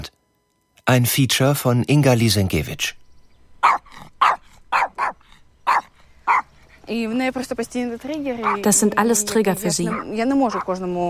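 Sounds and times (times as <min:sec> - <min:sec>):
speech: 0:00.9 - 0:03.0, 0:06.9 - 0:11.0
dog from Mariupol barking and yelping: 0:03.6 - 0:06.5, 0:08.4 - 0:08.7, 0:09.8 - 0:10.9.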